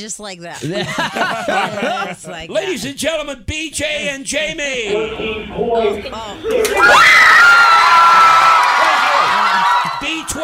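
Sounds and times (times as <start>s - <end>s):
speech: 0.0s - 8.2s
laughter: 0.6s - 3.0s, 8.7s - 10.4s
crowd of teenage girls screaming: 6.7s - 10.3s.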